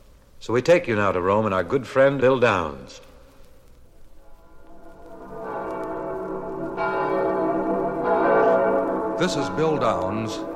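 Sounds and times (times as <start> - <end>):
speech: 0.4 - 3.1, 9.2 - 10.5
large church bells pealing for midnight mass: 4.2 - 10.5.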